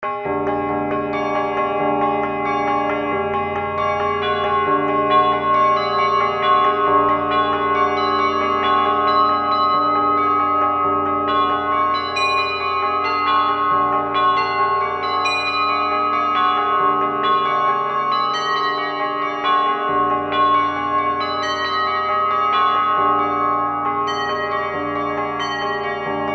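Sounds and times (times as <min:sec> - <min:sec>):
tempered bells ringing for tuning comparison: 0:00.0 - 0:26.3.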